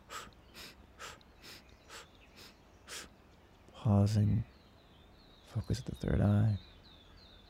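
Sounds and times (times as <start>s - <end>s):
rhythmic breathing through nose and mouth in an alternating breathing exercise: 0.0s - 3.1s
speech: 3.8s - 4.5s, 5.6s - 6.7s.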